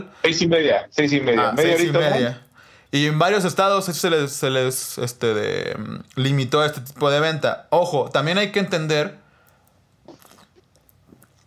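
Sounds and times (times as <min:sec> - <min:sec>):
speech: 0:00.0 - 0:09.2
person sipping a drink and swallowing: 0:09.5 - 0:11.4.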